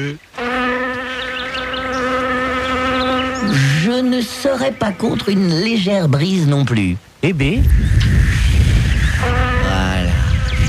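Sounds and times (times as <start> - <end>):
speech: 0.0 - 0.3, 3.4 - 8.4
bees buzzing: 0.2 - 6.4, 7.7 - 10.6.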